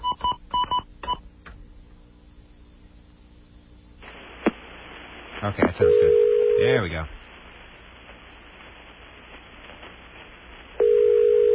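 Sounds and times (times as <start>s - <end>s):
faint hiss: 3.6s - 11.5s
speech: 5.4s - 7.2s
telephone line tone: 5.8s - 6.8s, 10.8s - 11.5s.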